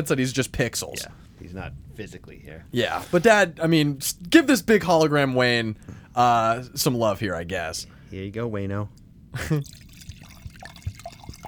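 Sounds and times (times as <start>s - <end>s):
speech: 0.0s - 9.8s
liquid pouring: 9.5s - 11.4s
drips and splashes: 9.6s - 11.4s.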